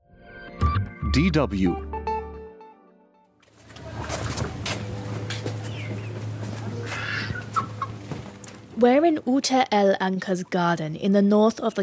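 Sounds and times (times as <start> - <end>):
speech: 1.1 - 1.9, 8.8 - 11.8
chickens clucking in a small garden enclosure in the Gaza Strip: 3.6 - 8.6
steady low hum: 3.6 - 9.3
ducks calling in a small garden enclosure in the Gaza Strip: 3.7 - 8.6
short bird calls: 5.7 - 8.0.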